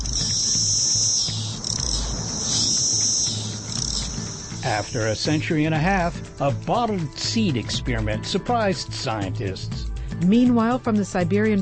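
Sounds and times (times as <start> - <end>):
cicadas buzzing: 0.0 - 7.6
speech: 4.7 - 11.6.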